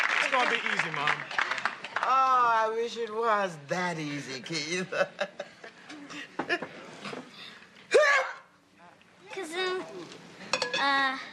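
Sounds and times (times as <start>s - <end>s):
speech: 0.3s - 5.5s, 6.1s - 6.8s, 10.8s - 11.3s
sneeze: 7.9s - 8.5s.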